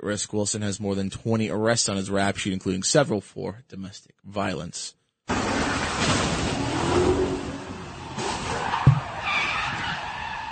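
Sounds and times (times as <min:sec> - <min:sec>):
speech: 0:00.0 - 0:07.2
car T-boning another car in the street: 0:05.3 - 0:09.9
tires skidding on a street: 0:05.3 - 0:10.5.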